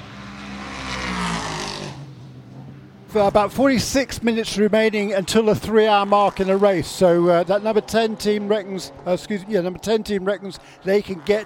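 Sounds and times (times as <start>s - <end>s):
race car engine revving and pulling away from pit stop: 0.0s - 2.2s, 4.5s - 11.4s
speech: 3.1s - 11.4s.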